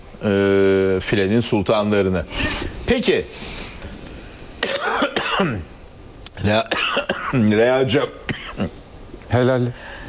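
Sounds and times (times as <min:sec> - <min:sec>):
speech: 0:00.2 - 0:00.5, 0:01.1 - 0:03.6, 0:05.4 - 0:05.7, 0:06.4 - 0:09.9
person not fully over the flu coughing: 0:04.6 - 0:05.7, 0:06.7 - 0:07.4, 0:08.3 - 0:08.7.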